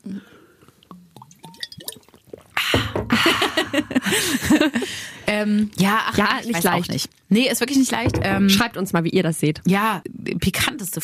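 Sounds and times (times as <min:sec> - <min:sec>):
two people sipping and swallowing water: 0:00.0 - 0:04.5
laughter: 0:03.1 - 0:05.0
speech: 0:04.1 - 0:11.0.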